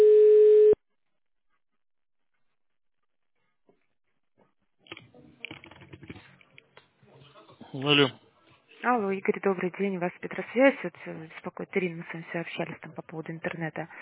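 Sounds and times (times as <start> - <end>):
telephone line tone while a call connects: 0.0 - 0.8
speech: 7.8 - 8.2, 8.8 - 13.9.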